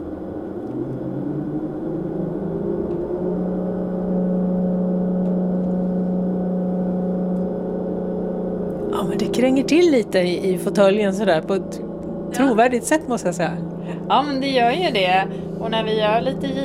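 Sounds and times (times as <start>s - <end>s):
simulated engine of a driving simulator accelerating: 0.0s - 16.6s
speech: 9.2s - 16.6s.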